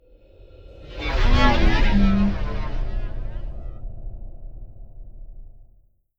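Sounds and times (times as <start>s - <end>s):
whoosh: 1.2s - 3.2s.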